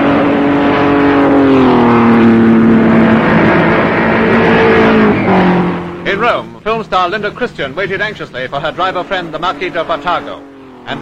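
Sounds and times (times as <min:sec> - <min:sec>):
racing car engines speeding past: 0:00.0 - 0:06.2, 0:07.2 - 0:10.9
speech: 0:06.7 - 0:10.9.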